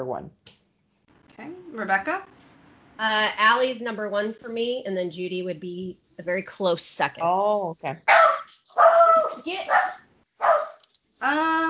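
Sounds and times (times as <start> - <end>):
speech: 0.0 - 0.5, 1.4 - 2.4, 3.0 - 10.5
dog barking and yipping: 8.1 - 10.8.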